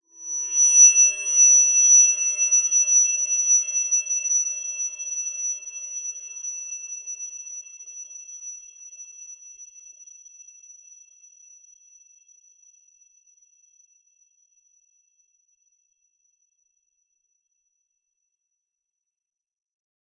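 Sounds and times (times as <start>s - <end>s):
shrill high-pitched horror whine: 0.2s - 7.3s.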